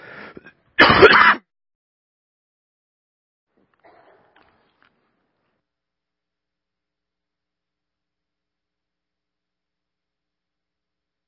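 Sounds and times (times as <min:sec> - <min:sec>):
person clearing throat: 0:00.4 - 0:01.4, 0:03.8 - 0:04.5.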